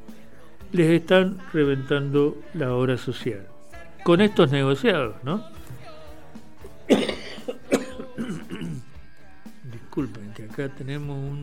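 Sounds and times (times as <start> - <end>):
speech: 0.7 - 5.6, 10.0 - 11.4
person coughing irritated by perfume: 6.9 - 8.9.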